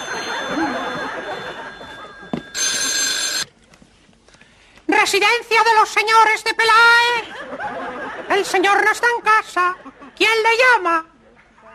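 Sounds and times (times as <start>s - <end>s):
laughter: 0.0s - 2.4s, 7.2s - 8.9s
telephone bell ringing: 0.0s - 3.5s
speech: 5.1s - 7.6s, 8.3s - 11.1s.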